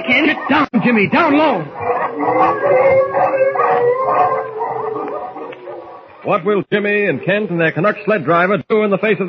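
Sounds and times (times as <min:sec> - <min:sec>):
speech: 0:00.0 - 0:05.1, 0:06.2 - 0:09.2
pack of wolves howling in chorus: 0:00.0 - 0:06.4.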